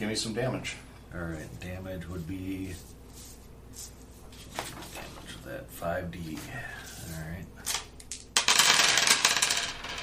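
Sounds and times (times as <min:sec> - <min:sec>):
speech: 0:00.0 - 0:03.9, 0:05.5 - 0:07.7
dice rolling on a hard table: 0:07.7 - 0:10.0.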